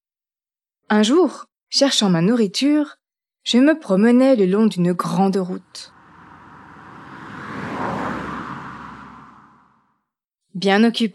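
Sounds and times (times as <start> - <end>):
speech: 0.9 - 5.9, 10.6 - 11.1
car speeding by on a road with engine and tire roar: 5.7 - 9.9.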